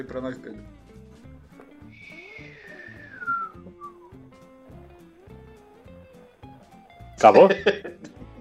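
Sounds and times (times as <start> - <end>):
speech: 0.0 - 0.8, 7.2 - 8.1
voice imitating a falling bomb whistle: 2.0 - 4.0
laughter: 7.4 - 8.2.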